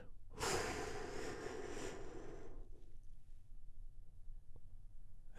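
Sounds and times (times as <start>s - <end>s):
long soft exhale of a deep breath: 0.4s - 2.9s
sharp louder breath intake: 0.4s - 2.9s.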